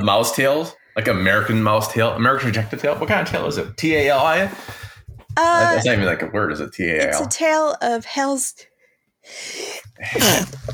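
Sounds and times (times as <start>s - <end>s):
speech: 0.0s - 4.8s, 5.4s - 10.7s
forceful loud sneeze: 10.0s - 10.6s.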